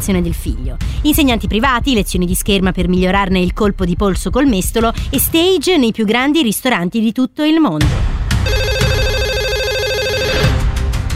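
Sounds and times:
speech: 0.0s - 8.6s
telephone ringing with a warbling electronic tone: 8.4s - 10.6s.

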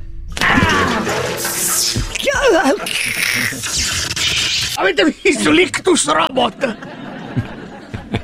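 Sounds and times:
bucket of water dumped and splashing: 0.4s - 3.8s
warbling wobbly rising tone: 0.4s - 5.3s
laughter: 2.0s - 4.0s, 5.3s - 8.2s
speech: 2.4s - 4.0s, 4.8s - 7.5s.

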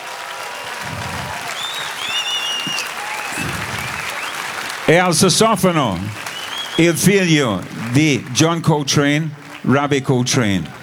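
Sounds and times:
audience applause: 0.0s - 10.8s
faint whistles: 0.5s - 4.9s, 5.8s - 7.8s
laughter: 0.6s - 10.8s
murmured voices: 0.6s - 10.8s
speech: 4.9s - 6.2s, 6.8s - 10.8s.

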